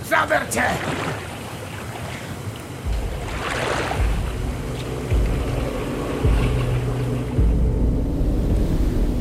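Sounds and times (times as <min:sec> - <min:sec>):
river water rushing around a small rowing boat at night: 0:00.0 - 0:07.8
speech: 0:00.2 - 0:01.2
low dull thumps of a moving rowing boat: 0:02.8 - 0:09.1.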